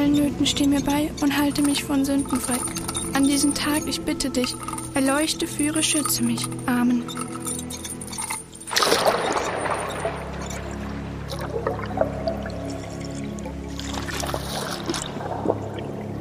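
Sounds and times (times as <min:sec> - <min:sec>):
speech: 0:00.3 - 0:07.3
water pouring into a jug: 0:08.2 - 0:16.2.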